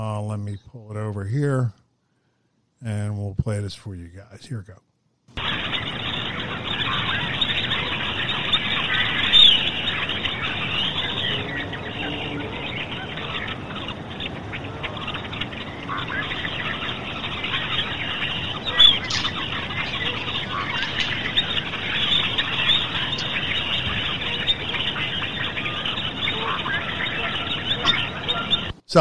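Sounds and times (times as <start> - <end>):
speech: 0.0 - 1.8, 2.8 - 5.4
dense chorus of many birds chirping and calling on an empty road: 5.4 - 28.8.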